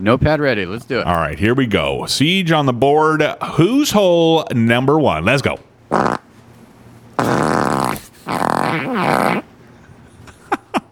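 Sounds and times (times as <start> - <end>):
speech: 0.0 - 6.2
farts: 5.9 - 6.4, 7.2 - 10.1.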